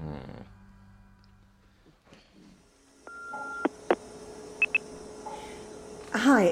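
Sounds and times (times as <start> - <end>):
quiet low hum: 0.0 - 6.5
electronic telephone keypad tones: 3.1 - 4.0, 4.6 - 4.9
speech: 6.2 - 6.5.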